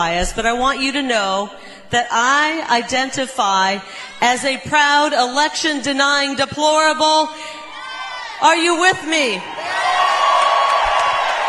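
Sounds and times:
speech: 0:00.0 - 0:07.6, 0:08.4 - 0:09.8
large crowd cheering and whooping: 0:07.7 - 0:11.4.

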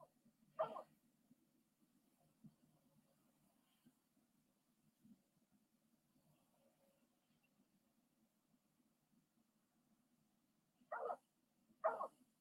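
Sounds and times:
dog barking: 0:00.6 - 0:00.9, 0:10.9 - 0:12.3.

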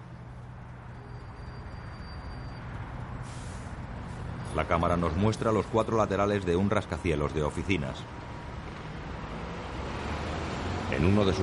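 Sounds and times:
cars passing between tall buildings downtown: 0:00.0 - 0:11.4
low rumble of daytime city traffic in a US city: 0:00.0 - 0:11.4
speech: 0:04.6 - 0:08.3, 0:10.9 - 0:11.4.

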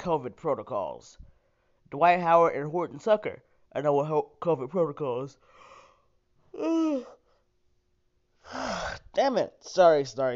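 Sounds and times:
speech: 0:00.0 - 0:01.3, 0:01.9 - 0:05.6, 0:06.5 - 0:07.2, 0:08.5 - 0:10.3
person yawning: 0:06.5 - 0:07.3, 0:08.4 - 0:09.1.

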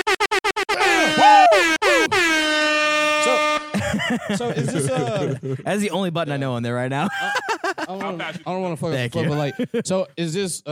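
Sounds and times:
air horn blasts: 0:00.0 - 0:05.0
laughter: 0:03.6 - 0:06.1, 0:07.0 - 0:10.2
speech: 0:04.3 - 0:10.7.

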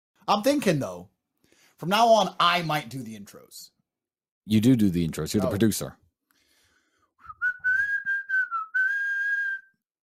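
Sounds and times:
speech: 0:00.3 - 0:01.1, 0:01.8 - 0:03.8, 0:04.5 - 0:06.0
person whistling a short wavering tune: 0:07.2 - 0:09.9.

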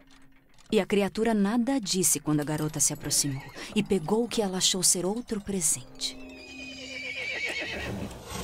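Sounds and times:
speech: 0:00.7 - 0:06.3
horse neighing: 0:06.3 - 0:08.1.

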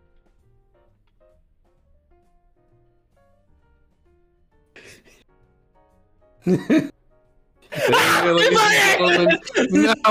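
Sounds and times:
speech: 0:06.4 - 0:06.9, 0:07.9 - 0:10.1
laughter: 0:06.5 - 0:06.9, 0:07.7 - 0:10.1
loud drawn-out strained gasp: 0:07.7 - 0:08.2
short breathy bursts: 0:07.7 - 0:08.8.

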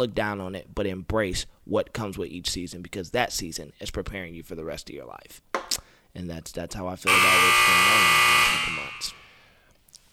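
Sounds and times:
speech: 0:00.0 - 0:09.2
brief high blip: 0:07.1 - 0:09.4
harsh electronic timer buzzer ending a timed segment: 0:07.1 - 0:09.4.

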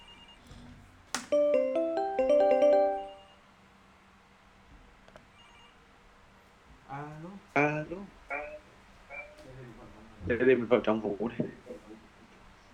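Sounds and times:
call ringtone of a phone calling a smart speaker in the bedroom: 0:01.3 - 0:03.4
speech: 0:10.3 - 0:11.7.

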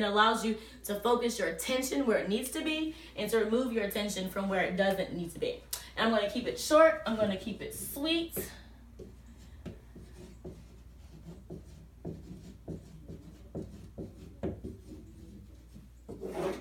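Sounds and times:
speech: 0:00.0 - 0:08.6
pen or marker writing by hand: 0:09.0 - 0:16.5.

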